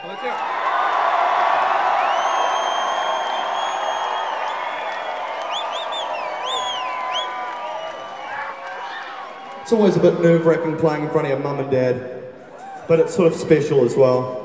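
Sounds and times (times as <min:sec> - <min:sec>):
large concert crowd screaming and cheering: 0:00.0 - 0:14.4
speech: 0:00.1 - 0:00.5, 0:09.7 - 0:12.1, 0:12.9 - 0:14.4.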